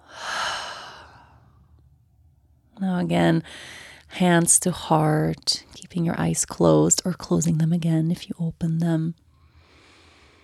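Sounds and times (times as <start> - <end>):
deep breath in during a guided meditation: 0.0 - 1.5, 9.4 - 10.4
speech: 2.8 - 9.2.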